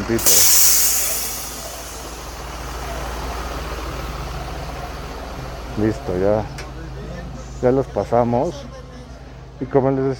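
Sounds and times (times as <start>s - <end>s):
air hiss of garbage trucks: 0.0s - 4.8s
garbage trucks passing in a neighborhood street: 0.0s - 7.6s
speech: 0.1s - 1.0s, 5.8s - 6.6s, 7.6s - 8.8s, 9.6s - 10.1s.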